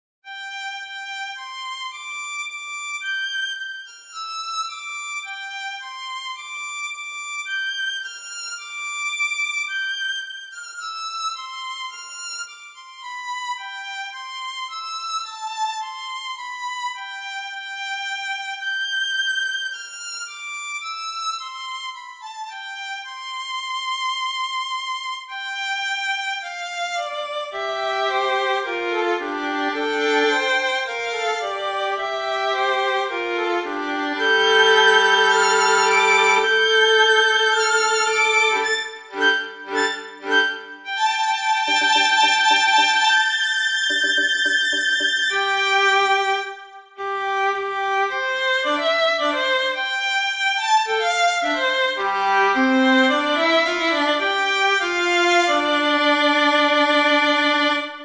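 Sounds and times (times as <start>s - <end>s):
violin solo: 0.2s - 58.0s.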